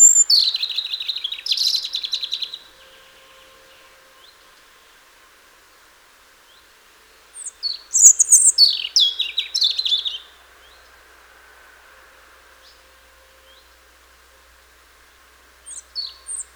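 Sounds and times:
European robin Erithacus rubecula singing: 0.0s - 11.0s, 15.5s - 16.5s.

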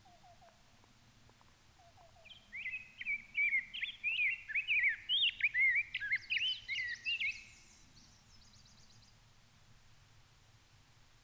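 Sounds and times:
Rose-breasted Grosbeak Pheucticus ludovicianus song in Minnesota: 1.8s - 9.2s.

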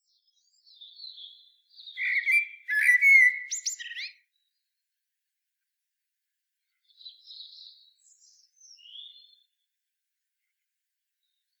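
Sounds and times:
common blackbird Turdus merula singing: 0.3s - 4.2s, 6.9s - 9.4s.

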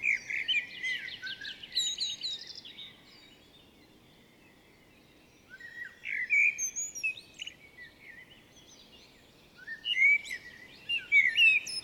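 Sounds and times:
common blackbird singing: 0.0s - 11.8s.

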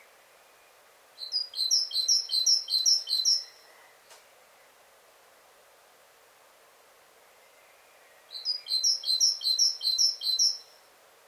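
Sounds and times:
great tit Parus major calling: 1.2s - 3.6s, 8.3s - 10.7s.

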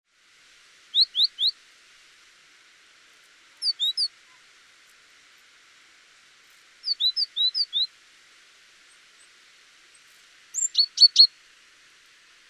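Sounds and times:
steady background hiss: 0.1s - 12.4s
great tit Parus major calls: 0.9s - 1.6s, 3.6s - 4.4s, 6.8s - 7.9s, 10.0s - 11.4s.

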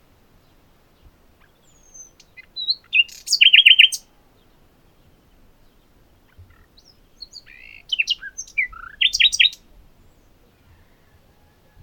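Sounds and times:
common nightingale Luscinia megarhynchos singing: 0.0s - 11.8s.

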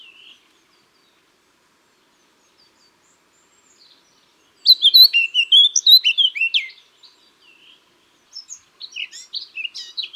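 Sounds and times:
Eurasian blackcap (Sylvia atricapilla) song of sweet whistled and warbled notes: 4.6s - 6.5s
scattered bird chirps: 4.7s - 6.2s.

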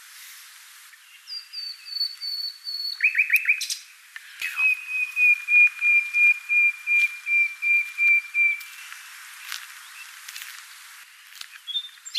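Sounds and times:
common nightingale song of even whistled notes: 1.1s - 3.8s, 4.4s - 8.8s, 11.7s - 12.1s.

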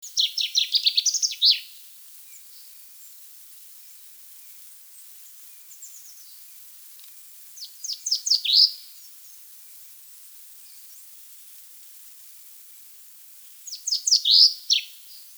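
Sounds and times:
Common chaffinch Fringilla coelebs singing a tumbling descending phrase: 0.0s - 1.8s, 7.6s - 8.8s, 13.7s - 15.2s
faint bird chirps: 0.0s - 3.2s, 4.9s - 6.7s, 7.5s - 9.4s, 13.5s - 15.3s.

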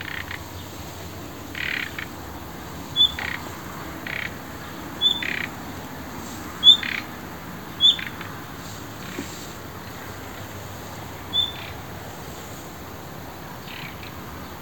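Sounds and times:
Luscinia megarhynchos common nightingale calls: 0.0s - 5.9s, 6.6s - 7.1s, 7.8s - 8.3s, 11.2s - 11.8s, 13.6s - 14.6s
background hiss: 0.0s - 14.6s.

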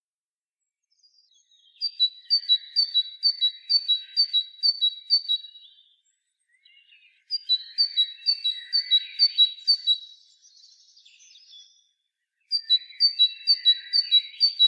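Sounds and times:
Parus major great tit singing a ringing high two-note phrase: 1.0s - 14.6s.

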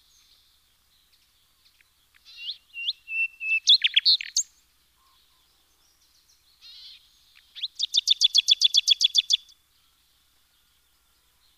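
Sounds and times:
Common nightingale Luscinia megarhynchos singing whistled notes with stuttering climax: 0.0s - 11.5s.

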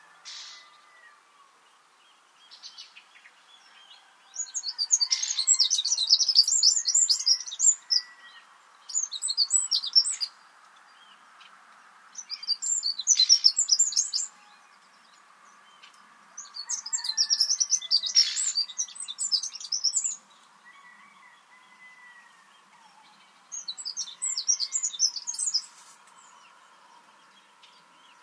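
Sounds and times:
faint steady background hiss: 0.0s - 16.6s, 18.0s - 28.2s
Eurasian wren song with rapid high trills and twittering: 4.4s - 10.4s, 12.2s - 20.6s, 22.6s - 28.2s.

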